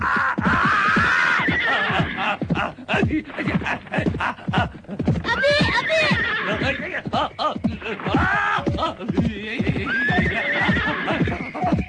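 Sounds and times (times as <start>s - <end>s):
horse neighing in a long loud whinny: 0.0s - 2.8s, 5.1s - 8.8s, 9.5s - 11.8s
horse hooves clopping rhythmically: 0.0s - 11.8s
laughter: 0.0s - 11.8s.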